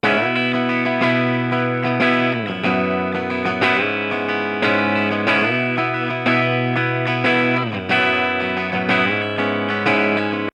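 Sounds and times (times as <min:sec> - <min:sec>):
stereo rhythm guitar: 0:00.0 - 0:10.5.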